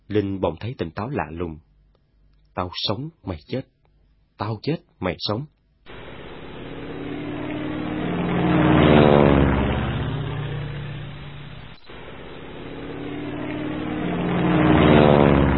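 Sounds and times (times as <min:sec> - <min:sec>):
speech: 0:00.1 - 0:01.7, 0:02.6 - 0:03.8, 0:04.4 - 0:05.6
low-flying propeller aircraft circling over trees, engine roaring: 0:05.9 - 0:15.5.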